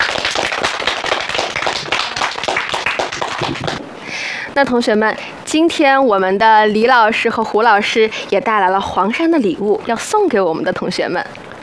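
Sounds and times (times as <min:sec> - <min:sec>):
crowd of students applauding: 0:00.0 - 0:03.8
speech: 0:04.6 - 0:11.4.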